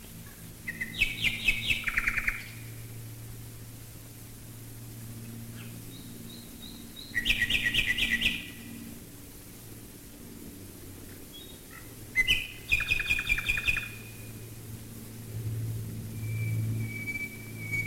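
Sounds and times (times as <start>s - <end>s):
bombers' aircraft engines droning overhead: 0.0s - 17.8s
common nightingale singing with pulsed notes and rattling trill: 0.7s - 2.6s, 5.6s - 8.8s, 12.2s - 14.3s, 16.1s - 17.8s.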